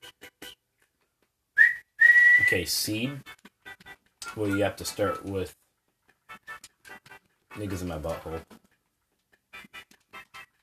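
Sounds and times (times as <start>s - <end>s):
person whistling: 1.6s - 2.6s
speech: 2.5s - 3.4s, 4.4s - 5.6s, 7.6s - 8.5s.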